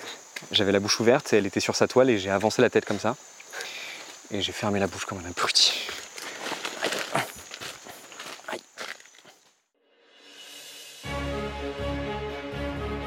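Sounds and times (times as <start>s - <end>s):
footsteps crunching through forest undergrowth: 0.3s - 9.6s
speech: 0.4s - 3.4s, 4.3s - 6.0s
music: 10.0s - 13.0s.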